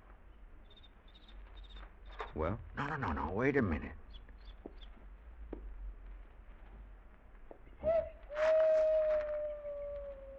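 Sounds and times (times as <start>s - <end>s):
low-humming outdoor background: 0.0s - 10.3s
speech: 2.3s - 4.0s
owl hooting: 7.8s - 10.3s.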